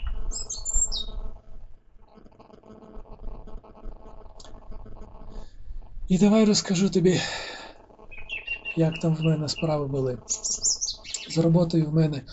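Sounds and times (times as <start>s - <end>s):
birds chirping outdoors: 0.0s - 1.3s, 4.0s - 12.3s
steady low rumble of wind or ambient noise: 0.0s - 2.0s, 3.0s - 12.3s
speech: 6.1s - 7.5s, 8.8s - 10.7s, 11.3s - 12.3s.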